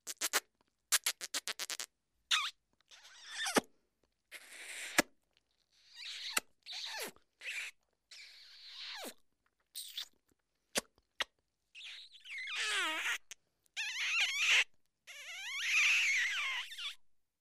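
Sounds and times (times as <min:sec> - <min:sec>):
comic kissing sounds: 0:00.0 - 0:03.7, 0:04.3 - 0:05.1, 0:05.9 - 0:07.8, 0:09.8 - 0:17.0.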